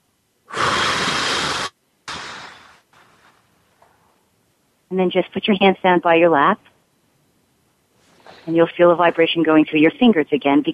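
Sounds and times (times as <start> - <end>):
person inhaling in a breathing exercise: 0.5 - 2.8, 8.1 - 8.5
person blowing out breath in a breathing exercise: 0.5 - 2.9
speech: 4.9 - 6.7, 8.4 - 10.7.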